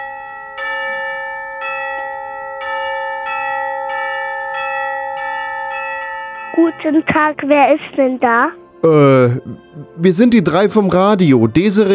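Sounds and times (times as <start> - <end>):
gate bell ringing: 0.0 - 8.1
speech: 6.6 - 11.9.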